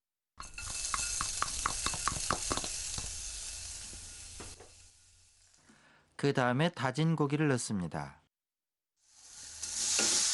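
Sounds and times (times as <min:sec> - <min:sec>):
finely chopped ginger sizzling in a hot pot: 0:00.4 - 0:05.7, 0:09.0 - 0:10.3
speech: 0:06.2 - 0:08.2.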